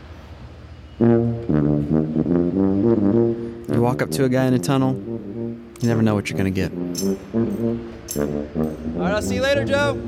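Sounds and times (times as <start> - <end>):
tuba playing low honking notes in a tunnel: 1.0 - 10.0
speech: 3.9 - 5.1, 5.8 - 10.0.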